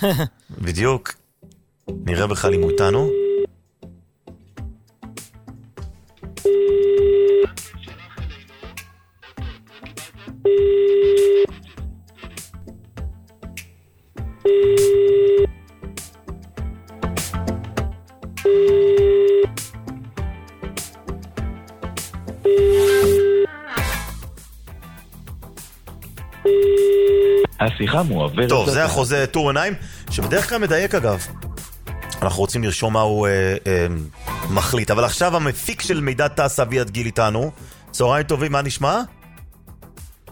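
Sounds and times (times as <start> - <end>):
speech: 0.0 - 1.2, 1.9 - 3.2, 27.6 - 31.4, 32.2 - 39.2
telephone line ringing tone after a call is placed: 2.5 - 3.5, 6.4 - 8.3, 10.3 - 11.6, 14.4 - 15.6, 18.4 - 19.6, 22.4 - 23.7, 26.4 - 27.5.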